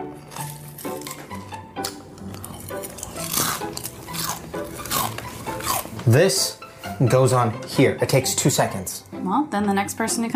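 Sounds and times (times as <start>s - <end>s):
loud crunchy chewing: 0.2s - 6.2s
speech: 6.1s - 10.3s.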